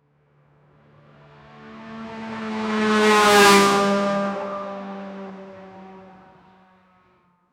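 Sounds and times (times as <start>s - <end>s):
2018 Porsche 911 RSR race car fly-by: 1.2s - 6.6s.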